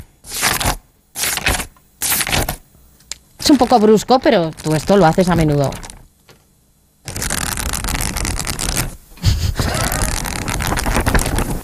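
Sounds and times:
book pages turning: 0:00.3 - 0:02.6, 0:03.4 - 0:06.4, 0:07.1 - 0:09.0, 0:09.8 - 0:11.6
speech: 0:03.5 - 0:05.9.

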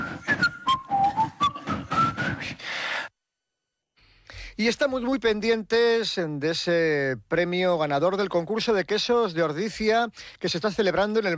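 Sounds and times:
rhythmic instrumental backing: 0:00.0 - 0:02.7
whistled tune in Donostia San Sebastian: 0:00.0 - 0:02.7
speech: 0:04.6 - 0:11.3.

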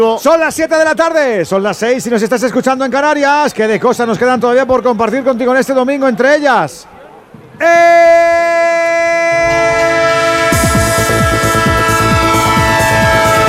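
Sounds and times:
speech: 0:00.0 - 0:07.0, 0:07.6 - 0:08.4
train horn chord with many stacked tones: 0:08.2 - 0:13.4.

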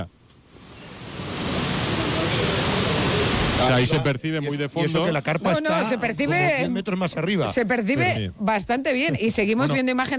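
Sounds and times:
heavy rain pouring on an open-air stadium: 0:00.5 - 0:04.0
speech: 0:03.6 - 0:10.1.

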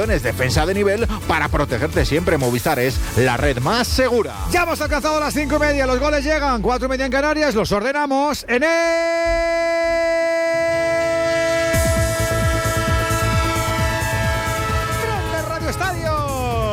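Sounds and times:
speech: 0:00.0 - 0:10.2
train horn sound effect: 0:11.0 - 0:16.3.

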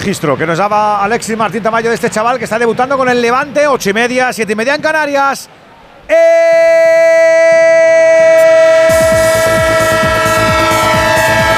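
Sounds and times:
speech: 0:00.0 - 0:08.7
train horn blaring in a loud sustained chord: 0:08.3 - 0:11.5.

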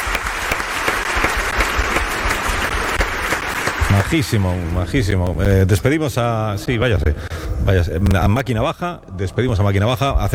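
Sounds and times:
room full of people clapping: 0:00.0 - 0:05.1
speech: 0:04.1 - 0:10.3.

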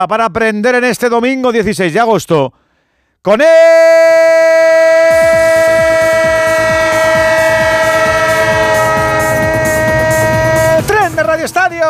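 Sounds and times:
speech: 0:00.0 - 0:02.6, 0:03.2 - 0:05.0, 0:11.4 - 0:11.8
long steady train horn blast: 0:05.1 - 0:11.2.

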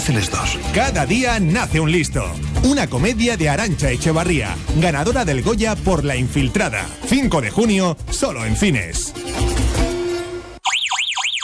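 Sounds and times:
speech: 0:00.0 - 0:09.9
Verisure home security alarm siren warbling after detecting an intruder: 0:10.6 - 0:11.4.

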